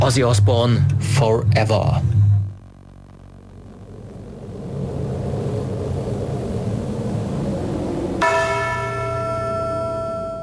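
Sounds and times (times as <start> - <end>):
steady rumbling storm-like noise: 0.0 - 10.2
speech: 0.1 - 2.2
heavy church bell tolling with a deep ringing tone: 8.2 - 10.4.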